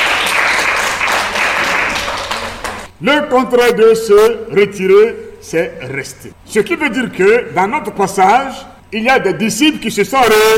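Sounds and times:
audience applause during a church sermon: 0.0 - 2.9
speech: 3.0 - 10.5.

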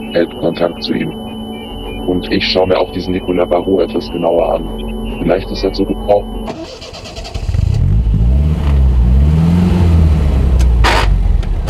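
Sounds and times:
speech: 0.1 - 1.3, 2.1 - 7.1
car engine revving as the car pulls away in Paris: 6.4 - 11.6.

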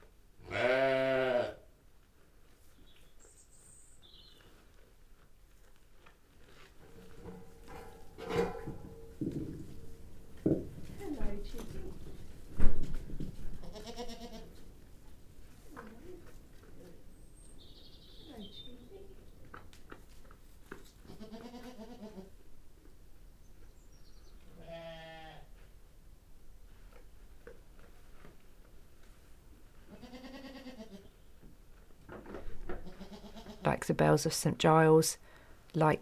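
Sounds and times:
goat bleating in a barn shared by sheep and goats: 0.4 - 1.6, 13.6 - 14.6, 21.0 - 22.3, 24.5 - 25.5, 29.9 - 31.1, 32.8 - 33.7
barn rustles and clatter: 1.7 - 34.4
speech: 33.8 - 35.9.

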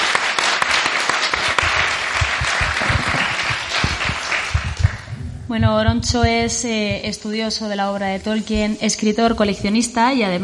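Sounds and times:
audience applauding a guest at a live fan convention: 0.0 - 5.2
speech: 5.5 - 10.4.

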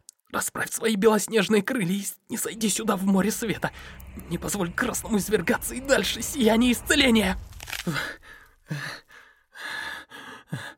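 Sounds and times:
speech: 0.3 - 9.0, 10.5 - 10.7
wounded man breathing raggedly and heavily: 7.8 - 10.7.

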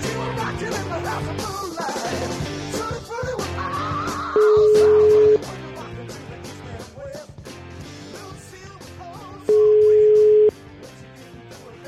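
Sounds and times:
music: 0.0 - 11.8
telephone ringing tone while placing a call: 4.4 - 5.4, 9.5 - 10.5.

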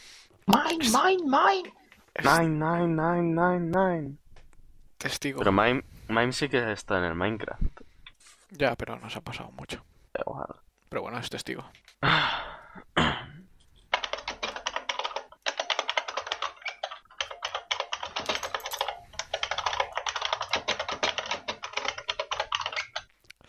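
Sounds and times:
speech: 0.5 - 4.2, 5.0 - 7.8, 8.5 - 13.2
rapid typing on a computer keyboard: 13.9 - 23.2.

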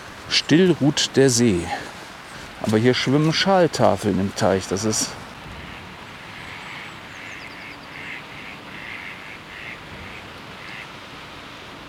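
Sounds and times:
steady rough noise: 0.0 - 10.1
speech: 0.3 - 1.9, 2.6 - 5.2
ducks quacking on a pond: 4.8 - 11.0.

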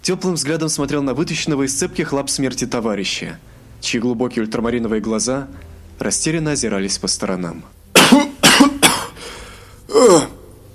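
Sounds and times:
speech: 0.0 - 8.7
dragon coughing: 8.0 - 9.2, 9.9 - 10.4.

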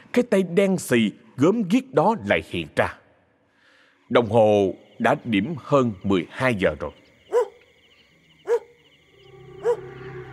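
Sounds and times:
speech: 0.2 - 3.0, 4.1 - 7.0
neighbour's dog barking at night: 7.3 - 7.6, 8.4 - 8.7, 9.6 - 9.9.

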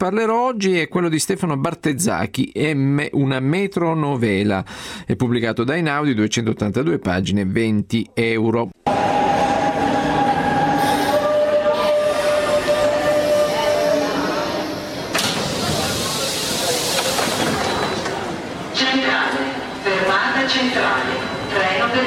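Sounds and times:
speech: 0.0 - 9.1
tonal whines of metro train: 8.8 - 15.2
metro train running underground: 8.8 - 22.0
high squealing metro train wheels: 8.9 - 15.1, 15.7 - 18.2.

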